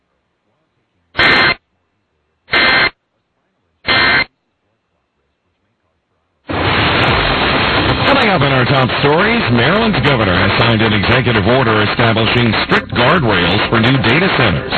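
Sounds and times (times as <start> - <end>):
Emergency Alert System sustained harsh staticky blare: 1.2 - 1.6, 2.5 - 3.0, 3.8 - 4.3, 6.5 - 14.7
Emergency Alert System test tones as short raspy digital bursts: 1.2 - 1.6, 2.5 - 3.0, 3.9 - 4.3, 6.5 - 14.7
speech: 8.2 - 14.7.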